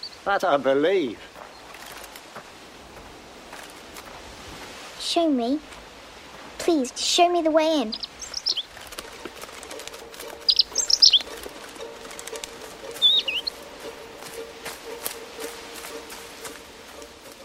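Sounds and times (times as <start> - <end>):
speech: 0.2 - 1.3, 5.1 - 5.8, 6.6 - 8.1
robin chirping: 7.7 - 14.5.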